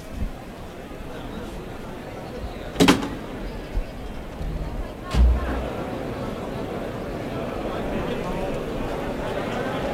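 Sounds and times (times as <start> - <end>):
steady murmur of crowd chatter and voices: 0.0 - 9.9
bullring toriles gate clunks: 5.1 - 5.7.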